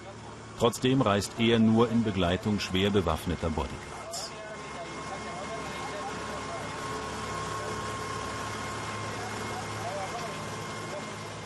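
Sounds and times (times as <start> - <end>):
boat engine droning, returning from a town: 0.0 - 11.4
speech: 0.6 - 3.9.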